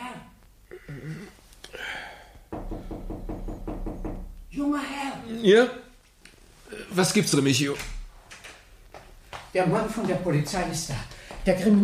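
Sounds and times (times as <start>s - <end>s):
knocking on a bedroom door in the morning: 2.5s - 4.4s
speech: 4.7s - 5.8s, 6.9s - 8.0s, 9.6s - 11.8s.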